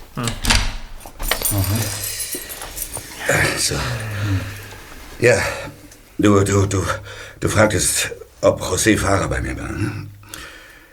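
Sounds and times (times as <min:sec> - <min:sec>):
speech: 0:00.2 - 0:00.6, 0:01.5 - 0:02.1, 0:03.3 - 0:04.6, 0:05.2 - 0:10.1
keys jangling as an office door is locked: 0:01.0 - 0:05.8.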